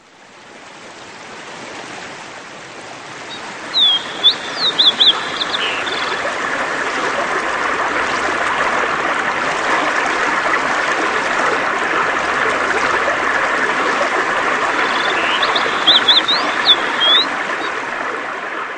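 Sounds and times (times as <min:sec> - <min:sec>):
river water rushing as a poled raft speeds into rapids: 0:03.0 - 0:18.7
short bird chirps: 0:03.3 - 0:06.4, 0:14.7 - 0:17.8.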